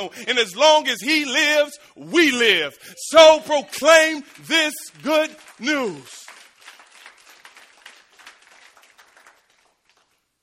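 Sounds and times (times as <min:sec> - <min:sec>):
speech: 0:00.0 - 0:06.2
congregation applauding: 0:03.1 - 0:10.4.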